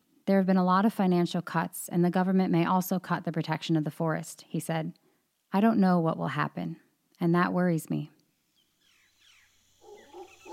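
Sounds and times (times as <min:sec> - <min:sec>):
speech: 0:00.3 - 0:08.2
family of howler monkeys howling in a forest: 0:09.7 - 0:10.5.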